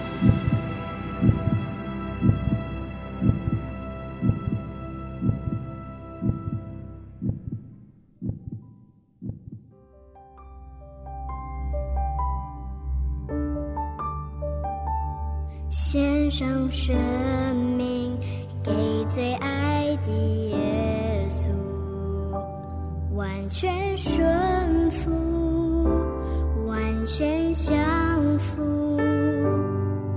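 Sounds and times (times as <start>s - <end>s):
soft sustained music: 0.0s - 7.3s, 10.0s - 30.1s
slow heavy heartbeat thudding: 0.0s - 9.8s
speech: 16.4s - 21.6s, 23.2s - 25.3s, 27.1s - 28.8s.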